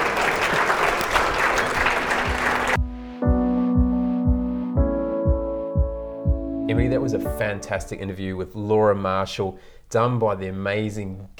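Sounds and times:
crowd applauding: 0:00.0 - 0:02.9
music with a thumping pulsing bass beat: 0:02.8 - 0:07.5
speech: 0:07.1 - 0:11.3.

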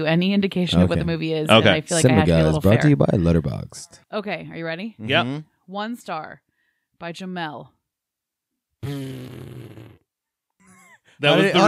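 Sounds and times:
speech: 0:00.0 - 0:06.4, 0:07.0 - 0:07.8, 0:08.8 - 0:09.6, 0:11.2 - 0:11.6
person blowing a raspberry imitating a fart: 0:08.8 - 0:10.1.

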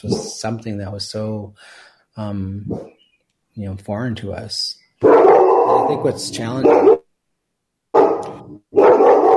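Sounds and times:
speech: 0:00.0 - 0:03.0, 0:03.6 - 0:07.0
dog barking: 0:02.7 - 0:03.0, 0:05.0 - 0:07.1, 0:07.9 - 0:09.3.

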